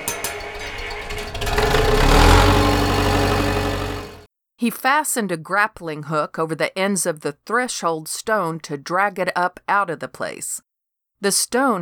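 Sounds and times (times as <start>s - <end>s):
diesel tractor engine cranking, starting and idling: 0.0s - 4.2s
speech: 4.6s - 11.8s.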